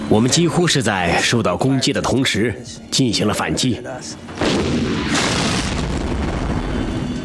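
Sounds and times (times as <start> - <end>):
speech: 0.1 - 5.2
artillery shell explosion hitting the ground near a tank: 4.3 - 7.1.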